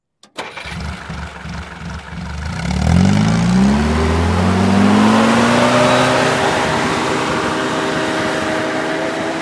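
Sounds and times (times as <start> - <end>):
army jeep engine starting and idling: 0.2 - 9.3.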